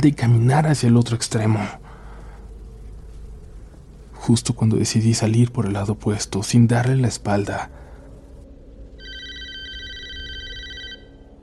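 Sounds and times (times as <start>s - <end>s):
speech: 0.0s - 1.8s, 4.2s - 7.8s
low steady hum: 0.0s - 11.4s
electronic telephone ringtone at a computer desk: 9.0s - 11.3s.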